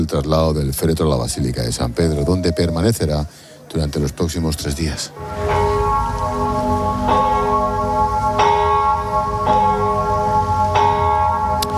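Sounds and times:
speech: 0.0 - 5.5
church bells ringing in a slow peal: 5.1 - 11.7.

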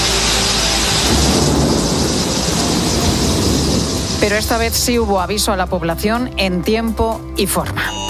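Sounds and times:
heavy torrential rain: 0.0 - 6.0
deep rolling thunder: 0.6 - 5.6
speech: 4.2 - 8.0.

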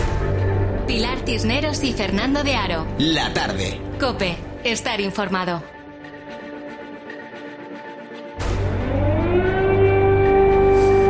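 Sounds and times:
speech: 0.9 - 5.7
air raid siren in Kyiv Ukraine warning of bombings: 7.9 - 11.0.

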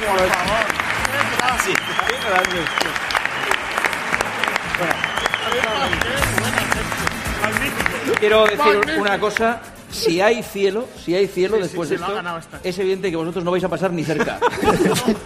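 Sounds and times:
crowd applauding at a live concert in Elche: 0.0 - 9.8
speech: 0.1 - 3.6, 4.8 - 15.2
laughter: 14.0 - 15.2.

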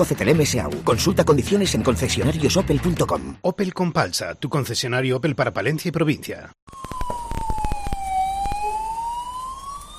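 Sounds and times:
speech: 0.0 - 7.0
fire engine siren wailing: 6.7 - 9.9.

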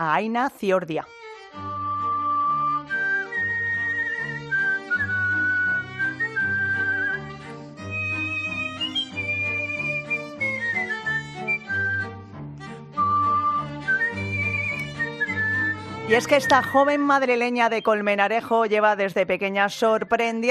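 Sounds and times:
speech: 0.0 - 1.8, 16.1 - 20.4
instrumental backing of bass and chords: 1.1 - 18.6
skilled whistler whistling a melody: 1.8 - 12.2, 13.0 - 17.1.

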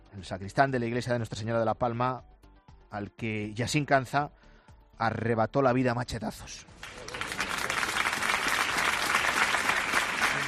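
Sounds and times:
speech: 0.2 - 2.3, 2.9 - 7.1
large crowd of neighbours applauding after a funeral in Algeciras: 6.8 - 10.4.

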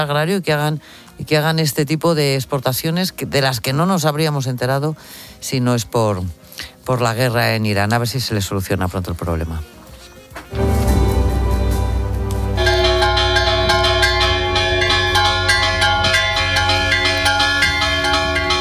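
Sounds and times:
speech: 0.0 - 9.7
church bells ringing: 10.6 - 18.5.

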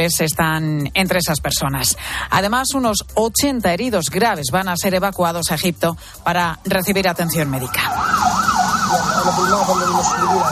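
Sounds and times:
speech: 0.0 - 10.4
ambulance siren wailing: 7.1 - 10.4.

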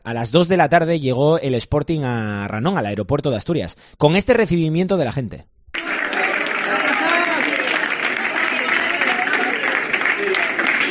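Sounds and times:
speech: 0.0 - 5.6
fans applauding at Asturias airport as their football team arrives: 5.8 - 10.8.

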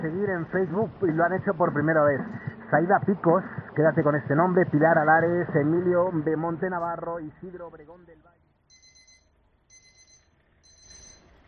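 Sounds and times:
speech: 0.0 - 8.4
low steady background: 0.0 - 11.4
alarm clock ringing in faint high-pitched bursts: 8.7 - 11.4.

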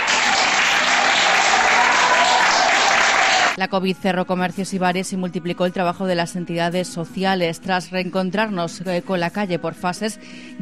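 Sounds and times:
crowd applauding: 0.0 - 3.6
speech: 3.6 - 10.6.

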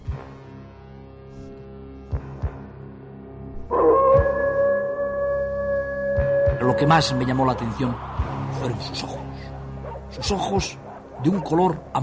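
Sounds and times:
wolf howling: 3.7 - 8.6, 9.7 - 12.0
speech: 6.8 - 9.2, 10.2 - 12.0.

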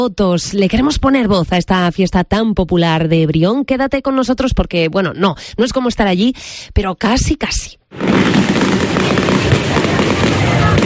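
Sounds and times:
speech: 0.0 - 10.6
fireworks barrage crackling and booming: 7.9 - 10.8
faint murmur of crowd voices: 8.8 - 10.8.

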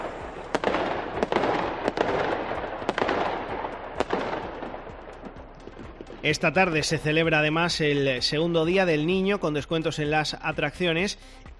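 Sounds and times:
dense continuous crackling rumble of fireworks: 0.0 - 8.6
fireworks display bursting with loud cracks and booms: 0.0 - 9.2
speech: 6.2 - 11.5.

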